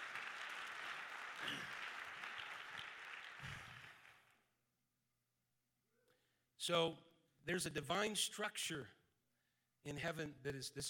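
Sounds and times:
large crowd applause: 0.0 - 4.3
speech: 6.6 - 9.0, 9.8 - 10.8.

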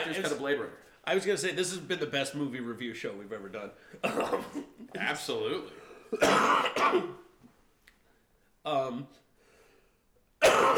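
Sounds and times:
speech: 0.1 - 7.2, 8.6 - 9.2, 10.5 - 10.7
harsh coughing: 3.9 - 5.0, 5.7 - 7.3, 10.4 - 10.7.

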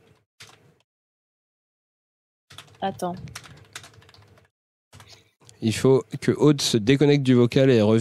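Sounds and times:
keyboard typing of a chat message: 0.0 - 0.8, 2.5 - 5.3
speech: 2.8 - 3.4, 5.6 - 7.9.

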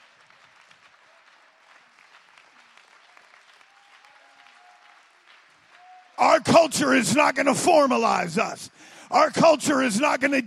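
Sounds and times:
large crowd applauding in praise: 0.0 - 6.7
speech: 6.2 - 10.4.

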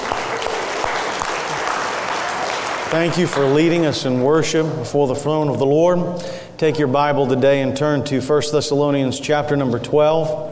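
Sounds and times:
congregation applauding: 0.0 - 4.7
speech: 2.9 - 10.4.

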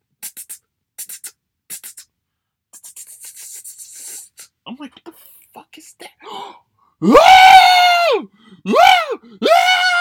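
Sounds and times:
speech: 4.7 - 5.2, 7.0 - 7.3
man reenacting a startled scream: 7.0 - 9.9.

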